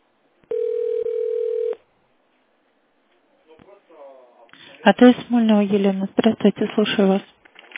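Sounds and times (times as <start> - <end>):
electronic telephone touch-tone beep on a call to a telephone exchange: 0.5 - 1.8
speech: 4.8 - 7.4.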